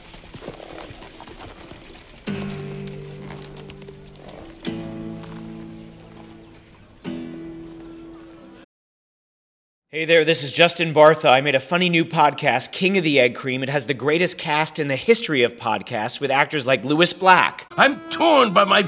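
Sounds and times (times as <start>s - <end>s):
horse hooves trotting as a rider rides away: 0.0s - 8.3s
sustained musical chords: 2.3s - 6.4s, 17.7s - 18.8s
speech: 10.0s - 18.8s.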